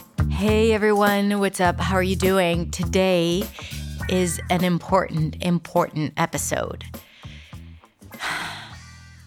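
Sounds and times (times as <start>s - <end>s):
speech: 0.4s - 7.0s
deep airy breath: 3.5s - 4.0s, 7.0s - 9.1s.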